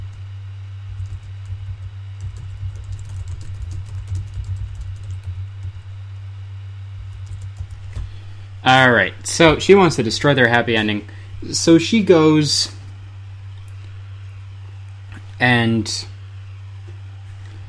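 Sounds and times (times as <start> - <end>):
constant low hum: 0.0 - 17.6
rapid irregular computer keyboard typing: 0.9 - 5.8, 7.0 - 8.2
speech: 8.6 - 12.8, 15.4 - 16.1.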